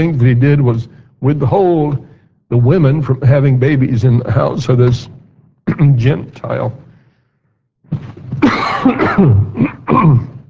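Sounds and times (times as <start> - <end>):
speech: 0.0 - 6.8, 7.9 - 10.3
person coughing: 8.4 - 10.4.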